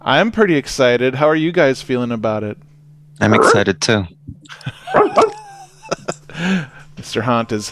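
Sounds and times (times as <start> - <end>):
speech: 0.0 - 5.4, 6.4 - 7.6
laughter: 4.5 - 6.9
puppy barking in high-pitched yips: 4.9 - 5.5.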